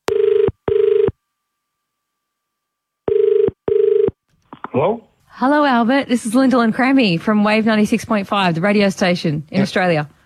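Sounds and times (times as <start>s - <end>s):
telephone ringback tone on an outgoing call: 0.1s - 1.1s, 3.1s - 4.1s
speech: 4.8s - 10.2s.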